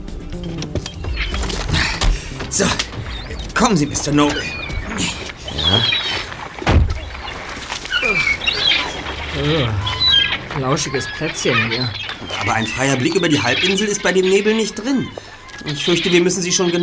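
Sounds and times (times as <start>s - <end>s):
rustling movement: 0.0s - 16.2s
steady outdoor hiss: 0.0s - 16.6s
seagulls calling in a resort parking lot by a nature reserve on a foggy day: 0.0s - 16.8s
car driver's door creaking: 0.3s - 12.2s
car driver's door latch click: 0.7s - 2.9s
speech: 2.5s - 2.9s, 3.6s - 6.0s, 9.4s - 9.8s, 10.6s - 16.8s.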